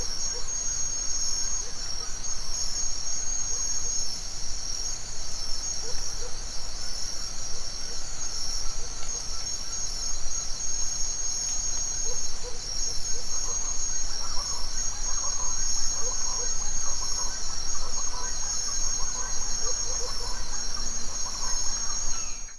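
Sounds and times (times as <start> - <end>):
cricket chorus in a forest at dawn in Mexico: 0.0 - 22.5.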